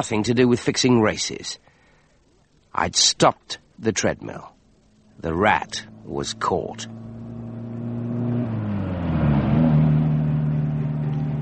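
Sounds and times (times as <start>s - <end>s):
speech: 0.0s - 1.8s, 2.8s - 4.6s, 5.2s - 7.0s
car engine revving up as it accelerates: 5.0s - 11.3s.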